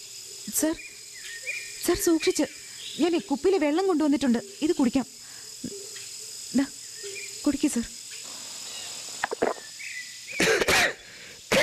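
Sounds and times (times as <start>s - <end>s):
speech: 0.5s - 0.9s, 1.8s - 5.8s, 6.5s - 6.8s, 7.4s - 8.0s
faint throat clearing: 10.4s - 11.6s
ill man coughing: 10.4s - 11.6s.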